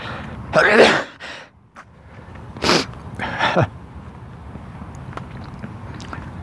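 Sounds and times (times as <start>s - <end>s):
person sneezing in the morning: 0.6s - 1.2s
sharp intakes of breath: 1.1s - 3.6s.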